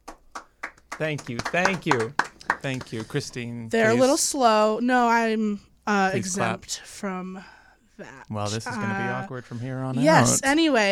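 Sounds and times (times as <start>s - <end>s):
hand claps: 0.0s - 3.4s
speech: 1.0s - 10.9s.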